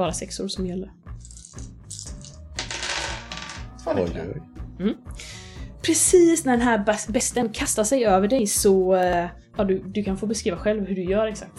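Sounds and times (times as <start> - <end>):
speech: 0.0 - 1.8, 3.9 - 11.5
eight dice clattering across a hard surface during a tabletop game: 1.2 - 3.6.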